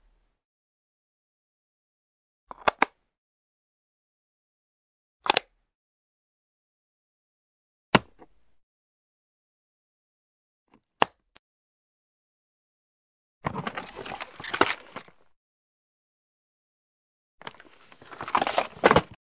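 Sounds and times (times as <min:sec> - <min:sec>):
plastic case opening and closing: 0:02.5 - 0:03.0, 0:05.3 - 0:05.6, 0:13.4 - 0:15.4, 0:17.4 - 0:19.2.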